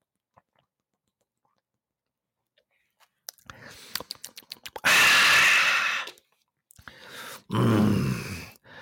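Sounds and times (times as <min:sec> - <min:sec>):
sipping and gulping cold water: 0:00.0 - 0:01.8, 0:03.2 - 0:07.0.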